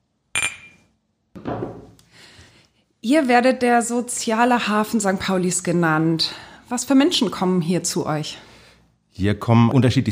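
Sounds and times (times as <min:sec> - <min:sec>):
glasses clinking in a toast at a café: 0:00.4 - 0:00.9
glasses clattering as set down: 0:01.4 - 0:02.0
speech: 0:03.0 - 0:08.5, 0:09.2 - 0:10.0.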